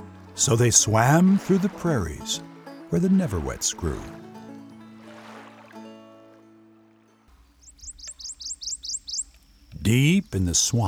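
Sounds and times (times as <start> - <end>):
speech: 0.4 - 4.2, 9.9 - 10.8
bird trilling in bright rising chirps: 7.6 - 10.5.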